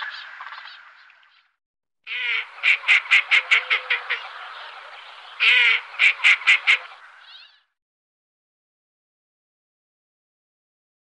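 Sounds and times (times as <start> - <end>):
northern pintail giving wheezy buzzy calls, whistles and harsh notes: 2.1 - 7.0.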